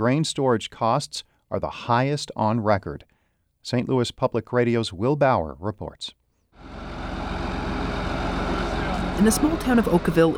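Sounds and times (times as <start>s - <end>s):
speech: 0.0s - 6.8s, 9.2s - 10.3s
heavy diesel tractor engine hauling a loaded grain cart: 6.6s - 10.3s.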